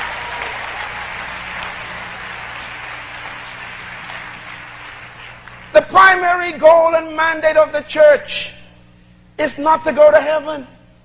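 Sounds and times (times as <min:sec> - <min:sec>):
audience applauding: 0:00.0 - 0:05.7
speech: 0:05.8 - 0:08.6, 0:09.4 - 0:10.7.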